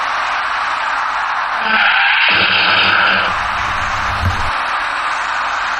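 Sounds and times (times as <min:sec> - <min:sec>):
highway road noise: 0:00.1 - 0:05.6
tyres screeching in a skid: 0:01.6 - 0:04.6
cars crashing into one another in a rear-end collision: 0:02.3 - 0:04.7.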